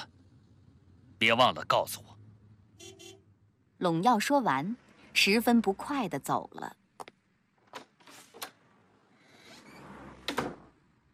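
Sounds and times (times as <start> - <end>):
speech: 1.2 - 2.2, 3.8 - 6.8
heavy door slamming shut with a deep thud: 9.8 - 10.8.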